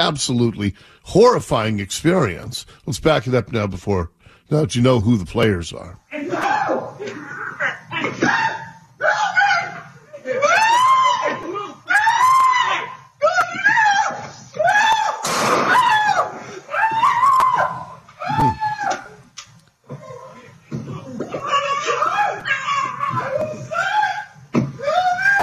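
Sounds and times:
speech: 0.0s - 7.4s
man screaming after being shot: 8.0s - 19.0s, 21.4s - 25.4s.

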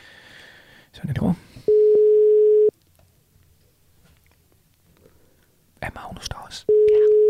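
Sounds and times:
speech: 1.0s - 1.4s
electronic telephone ringing tone of an outgoing call: 1.7s - 2.7s, 6.7s - 7.2s.

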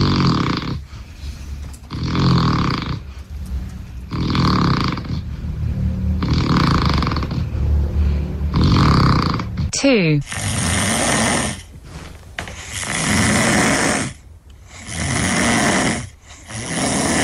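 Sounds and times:
person snoring loudly with harsh rattling breaths: 0.0s - 0.9s, 1.9s - 3.1s, 4.1s - 5.4s, 6.1s - 7.8s, 8.5s - 11.7s, 12.5s - 17.2s
speech: 9.8s - 10.5s.

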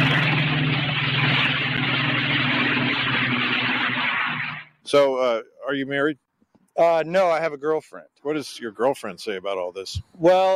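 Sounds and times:
Spitfire Merlin aircraft engine running: 0.0s - 5.0s
speech: 4.9s - 6.2s, 6.8s - 10.5s.

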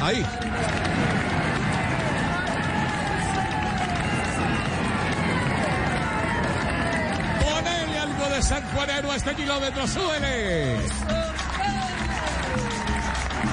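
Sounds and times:
large crowd roaring and cheering as cyclist passes: 0.0s - 13.5s
speech: 0.1s - 0.8s, 8.8s - 11.2s.

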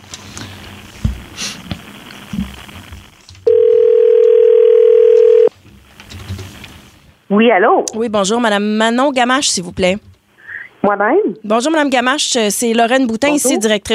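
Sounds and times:
ringback tone on an outgoing telephone call: 3.5s - 5.5s
speech: 7.3s - 10.1s, 10.8s - 13.9s.

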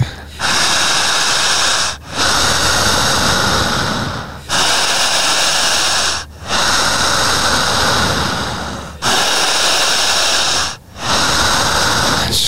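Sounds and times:
heavy forceful deep breathing during a guided breathing exercise: 0.0s - 12.4s.

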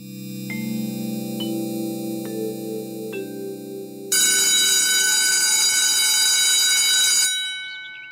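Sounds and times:
soft sustained musical tones: 0.0s - 4.7s
loud electric school bell ringing: 0.0s - 8.1s.

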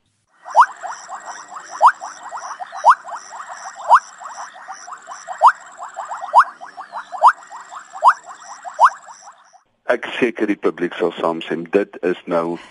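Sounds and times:
bubbling kassina frog calling: 0.4s - 9.6s
speech: 10.2s - 12.6s.

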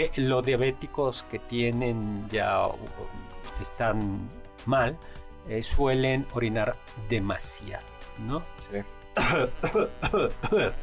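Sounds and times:
speech: 0.0s - 10.8s
forceful coughs with rough throat-clearing quality: 9.2s - 10.8s.

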